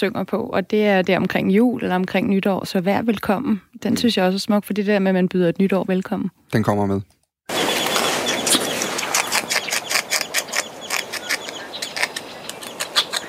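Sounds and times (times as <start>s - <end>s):
speech: 0.0s - 7.6s
beaver gnawing: 7.5s - 13.2s.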